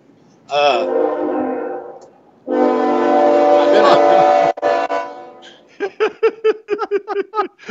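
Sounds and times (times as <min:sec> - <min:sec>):
man talking: 0:00.5 - 0:00.9
train horn blasts: 0:00.6 - 0:05.6
laughter: 0:03.6 - 0:04.5, 0:05.7 - 0:07.6.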